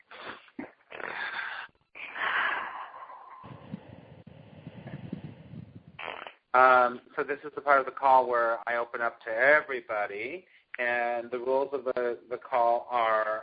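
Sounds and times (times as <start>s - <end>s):
deep breaths during a group call: 0.0s - 6.0s, 10.4s - 10.8s
speech: 6.6s - 13.4s.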